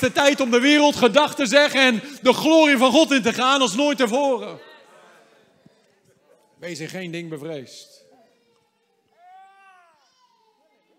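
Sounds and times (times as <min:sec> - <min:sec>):
speech: 0:00.0 - 0:04.7, 0:06.6 - 0:08.0
low room murmur: 0:00.0 - 0:10.9
baby crying in the audience: 0:09.1 - 0:10.9.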